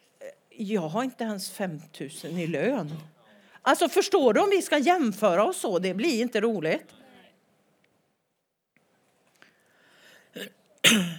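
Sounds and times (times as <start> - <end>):
speech: 0.6 - 7.0, 10.4 - 11.1
breathing: 3.2 - 3.7, 9.3 - 10.4
loud cough: 10.4 - 11.1.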